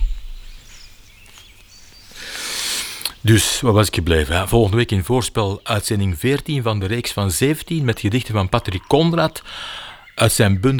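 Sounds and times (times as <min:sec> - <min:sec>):
birds chirping: 0:00.0 - 0:10.7
soft hissy outdoor background: 0:00.0 - 0:10.7
speech: 0:03.2 - 0:10.7.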